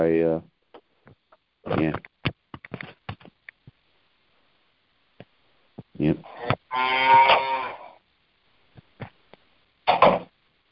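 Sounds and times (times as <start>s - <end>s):
speech: 0.0s - 0.5s, 1.7s - 2.1s, 6.8s - 7.7s
cow mooing: 6.2s - 8.0s.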